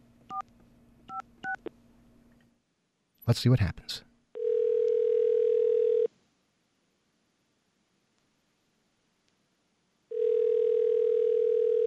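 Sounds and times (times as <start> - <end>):
speech: 3.3 - 4.1
loud steady telephone dial tone: 4.4 - 6.1, 10.1 - 11.8.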